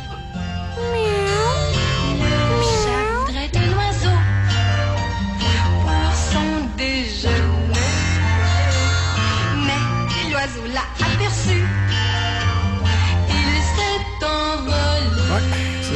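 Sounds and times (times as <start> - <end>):
steady dense musical backing: 0.0 - 15.9
person imitating a cat meowing: 0.8 - 3.4.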